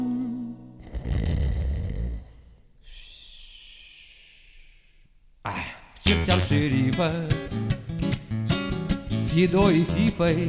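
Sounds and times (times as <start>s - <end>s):
quiet hiss: 0.0s - 9.9s
loud rough snore: 0.8s - 2.6s
speech: 6.3s - 7.4s, 9.3s - 10.4s.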